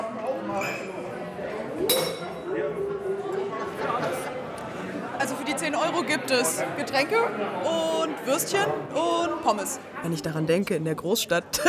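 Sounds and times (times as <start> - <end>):
lively chatter and murmuring voices in a busy room: 0.0 - 11.6
glasses clinking in a toast: 1.9 - 2.4
speech: 5.8 - 11.6.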